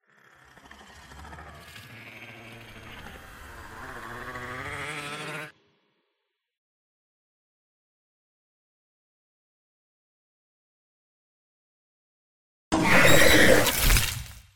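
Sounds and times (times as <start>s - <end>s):
growl: 0.0s - 5.5s, 12.7s - 14.0s.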